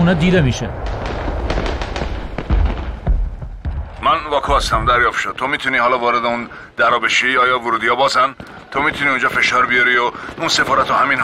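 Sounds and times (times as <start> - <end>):
speech: 0.0 - 1.7, 4.3 - 11.2
heavy booms: 0.0 - 5.5
gunfire exchanged across the street outside an embassy: 0.2 - 5.2, 8.4 - 11.2.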